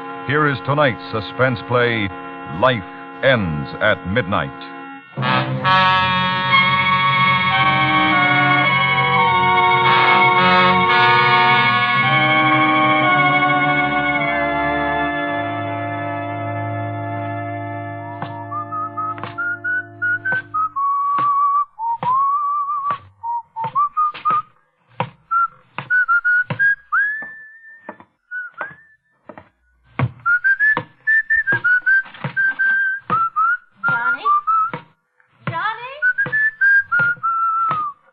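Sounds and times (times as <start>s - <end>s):
sustained musical chord: 0.0s - 19.2s
speech: 0.3s - 5.9s
person whistling a melody: 18.3s - 24.6s, 25.3s - 29.2s, 30.2s - 35.0s, 36.0s - 38.0s.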